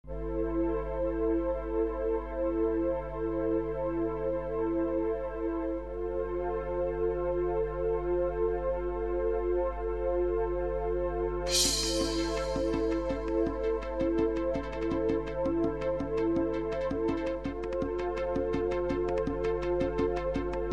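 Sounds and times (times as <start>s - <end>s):
bass: 0.0s - 20.7s.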